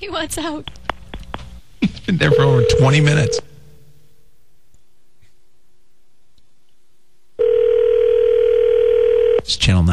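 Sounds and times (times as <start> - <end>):
speech: 0.0 - 0.8, 1.9 - 3.5, 9.5 - 9.9
steady telephone tone: 2.2 - 3.5, 7.4 - 9.5.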